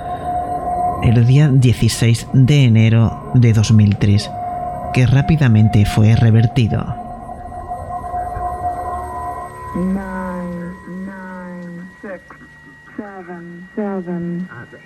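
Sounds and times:
harsh harmonic buzzing tone on shortwave radio: 0:00.0 - 0:14.8
steady hum: 0:00.0 - 0:14.8
speech: 0:01.0 - 0:07.0, 0:09.8 - 0:10.1
crackly shortwave radio static: 0:09.8 - 0:14.8.

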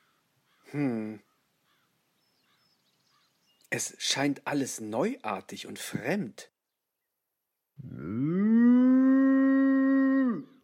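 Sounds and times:
speech: 0:00.7 - 0:01.3, 0:03.7 - 0:06.5, 0:07.8 - 0:08.5
cow mooing: 0:07.8 - 0:10.6.

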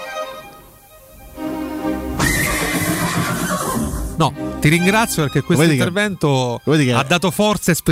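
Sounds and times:
angry horse neighing harshly: 0:02.1 - 0:04.6
speech: 0:04.2 - 0:07.9.

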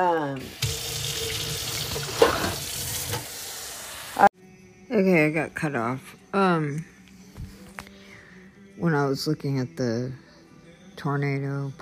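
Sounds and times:
speech: 0:00.0 - 0:01.4, 0:05.0 - 0:06.9, 0:08.8 - 0:10.2, 0:11.0 - 0:11.7
tap water running into a sink to water a plant: 0:00.4 - 0:03.8.

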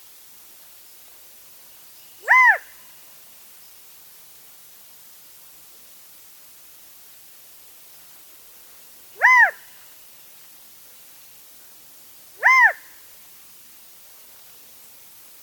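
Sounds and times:
Mountain Quail calling in oak chaparral: 0:02.2 - 0:02.7, 0:09.2 - 0:09.6, 0:12.4 - 0:12.8.

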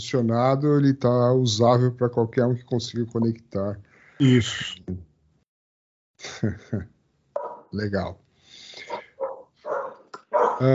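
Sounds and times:
speech: 0:00.0 - 0:05.1, 0:06.2 - 0:06.9, 0:07.7 - 0:08.2, 0:10.6 - 0:10.7
laughter: 0:04.2 - 0:04.8
dog barking: 0:07.4 - 0:07.8, 0:08.9 - 0:10.6.

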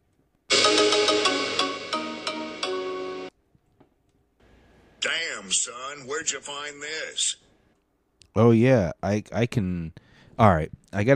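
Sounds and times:
phone ringtone with bright electronic melody: 0:00.5 - 0:03.3
speech: 0:05.0 - 0:07.5, 0:08.4 - 0:11.1.

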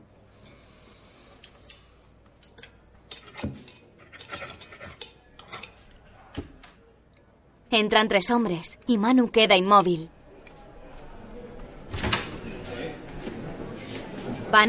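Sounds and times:
cutlery scraping and clinking on a plate while cutting steak with potatoes: 0:01.6 - 0:06.0
speech: 0:07.7 - 0:10.2.

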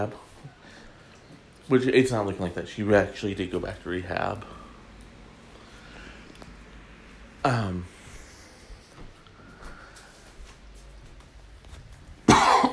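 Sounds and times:
speech: 0:00.0 - 0:00.3, 0:01.7 - 0:04.6, 0:07.4 - 0:07.9
person coughing: 0:12.3 - 0:12.7.

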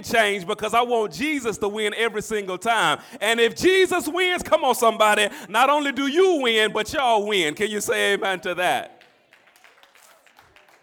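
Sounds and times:
speech: 0:00.0 - 0:09.0
hand claps: 0:08.9 - 0:10.8.

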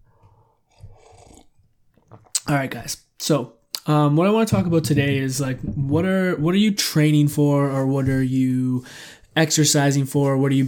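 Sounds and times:
swallow and breath: 0:00.0 - 0:02.4
person slurping a drink: 0:00.1 - 0:02.5
speech: 0:02.5 - 0:10.6.

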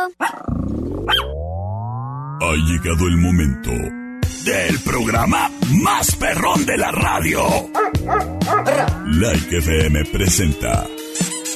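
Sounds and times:
speech: 0:00.0 - 0:00.8, 0:02.5 - 0:11.3
dog barking: 0:00.1 - 0:00.5, 0:01.1 - 0:01.3, 0:07.7 - 0:09.0
dog growling: 0:07.6 - 0:09.1.

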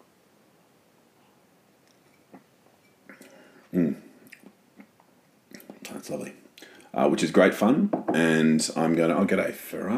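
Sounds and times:
wet mouth clicks while sipping single malt whisky: 0:04.2 - 0:04.9
soft lip smacks: 0:04.2 - 0:05.8
speech: 0:06.1 - 0:06.4, 0:07.0 - 0:09.9.

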